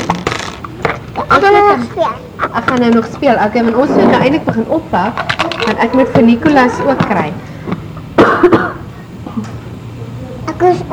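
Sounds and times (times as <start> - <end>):
speech: 1.4 - 7.5, 8.4 - 8.8, 10.6 - 10.9
person coughing: 8.2 - 8.9.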